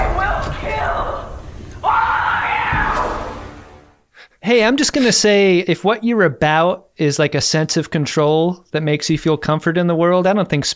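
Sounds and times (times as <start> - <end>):
loud sustained human yell: 0.0 - 3.4
rougher shouted voice: 0.0 - 3.5
speech: 4.5 - 10.7.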